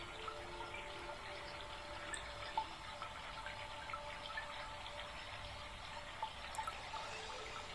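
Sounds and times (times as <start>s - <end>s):
flowing water: 0.0s - 7.7s.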